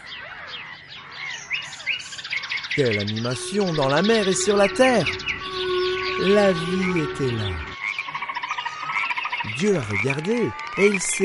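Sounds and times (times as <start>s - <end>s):
nightingale singing: 0.0s - 11.2s
sparrows chirping: 0.0s - 11.2s
speech: 2.8s - 5.4s, 6.2s - 7.7s, 9.5s - 11.2s
duck calling: 2.8s - 11.2s
rooster crowing: 3.6s - 8.0s.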